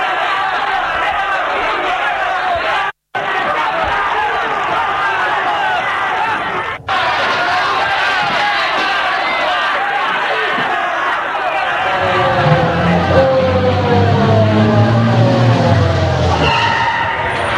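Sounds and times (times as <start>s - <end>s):
dense agitated crowd jostling and shouting: 0.0s - 17.5s
car engine whining: 11.8s - 17.5s
tires skidding as a vehicle pulls to a stop: 11.8s - 17.5s.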